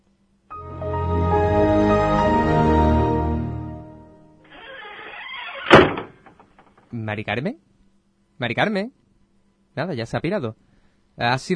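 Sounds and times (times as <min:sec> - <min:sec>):
long sustained dramatic chord: 0:00.5 - 0:04.4
heavy door slamming shut: 0:04.5 - 0:06.7
speech: 0:07.1 - 0:07.7, 0:08.4 - 0:09.0, 0:09.8 - 0:11.5.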